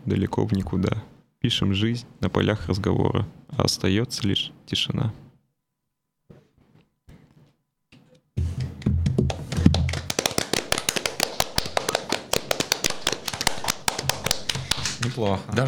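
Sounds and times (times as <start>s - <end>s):
speech: 0.1s - 5.2s, 15.2s - 15.6s
lively hand clapping from a small group after a poem: 8.8s - 15.3s.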